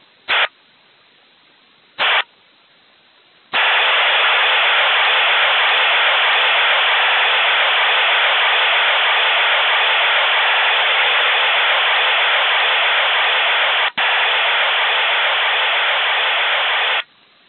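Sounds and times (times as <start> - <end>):
Russian 3000 Bd 8PSK serial tone data signal bursts: 3.6 - 17.0.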